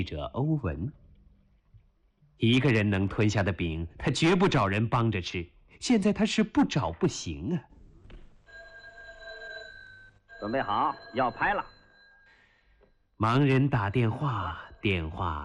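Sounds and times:
people in loud lively conversation: 1.0 - 15.4
telephone ringing with a steady electronic tone: 8.3 - 15.4.

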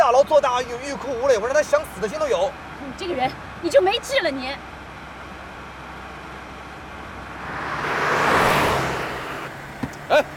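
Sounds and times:
speech: 0.3 - 4.7
car rushing past with engine and road roar: 7.1 - 10.3
brief high squeal like tires skidding: 7.2 - 10.3.

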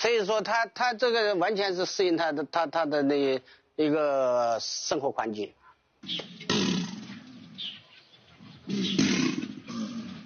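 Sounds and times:
speech: 0.0 - 6.6, 8.7 - 9.0
Chinese alligators bellowing in hot muggy weather before a thunderstorm: 8.6 - 10.2.

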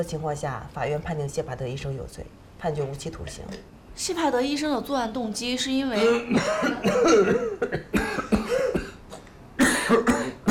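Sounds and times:
speech: 0.0 - 8.2
hacking coughs: 6.0 - 10.4.

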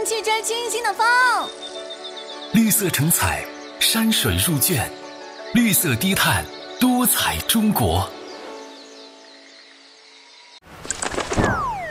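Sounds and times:
speech: 0.0 - 8.2
soft music: 0.0 - 10.6
light-vented bulbul wing flapping: 10.7 - 11.8.

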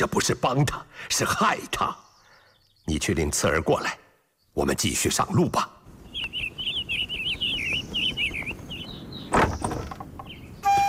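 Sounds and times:
speech: 0.0 - 2.0, 2.9 - 4.0, 4.6 - 5.8
birds chirping: 0.0 - 10.8
wooden house door opening: 9.2 - 10.8.

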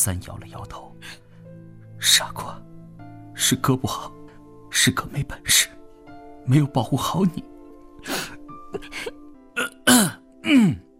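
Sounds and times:
speech: 0.0 - 1.2, 2.0 - 2.7, 3.4 - 5.8, 6.4 - 9.7, 10.5 - 10.8
man coughing with throaty hacks and rasping coughs: 8.7 - 10.8
man groaning: 9.6 - 10.9.

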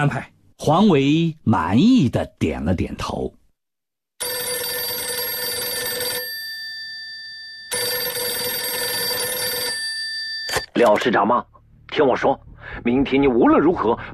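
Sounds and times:
speech: 0.0 - 3.4, 10.8 - 14.1
telephone bell ringing with a metallic trill: 4.2 - 10.8.

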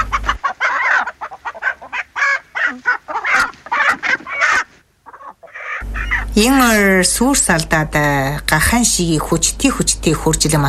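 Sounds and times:
rooster and hen clucking as they scratch up dust: 0.0 - 6.5
speech: 6.4 - 10.6.

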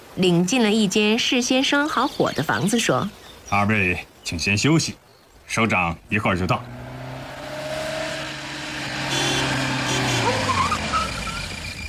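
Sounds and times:
speech: 0.2 - 6.8
car engine approaching: 6.0 - 11.8.

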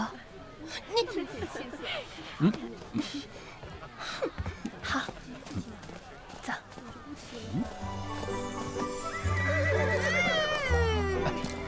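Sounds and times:
speech: 0.7 - 5.4, 7.2 - 8.3
horse neighing: 9.0 - 11.6.

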